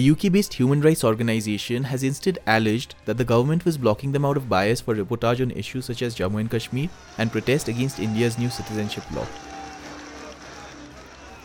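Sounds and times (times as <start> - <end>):
speech: 0.0 - 9.5
dense crowd of protesters shouting and chattering: 6.5 - 11.4.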